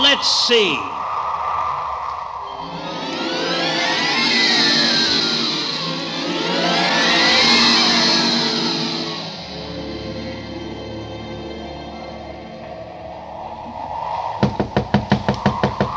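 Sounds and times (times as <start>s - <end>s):
speech: 0.2s - 1.1s
low sustained droning wind: 0.9s - 15.9s
knocking on the door of a boarding house: 14.4s - 15.9s.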